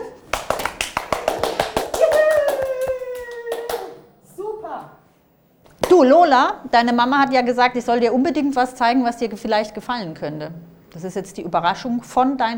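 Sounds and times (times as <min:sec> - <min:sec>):
hand clapping from one or a few people: 0:00.0 - 0:04.0
child letting out a long drawn-out cry: 0:02.0 - 0:04.0
speech: 0:06.0 - 0:12.5.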